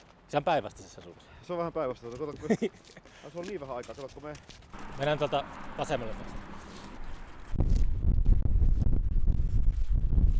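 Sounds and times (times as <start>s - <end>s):
speech: 0.3s - 6.5s
laughter: 2.4s - 3.1s
wind blowing outdoors buffeting the microphone: 4.7s - 10.3s.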